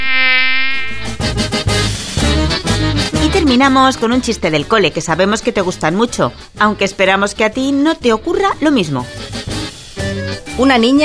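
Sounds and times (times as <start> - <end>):
mosquito's thin high-pitched whine: 0.0 - 2.9
speech: 3.5 - 9.2, 10.6 - 11.0.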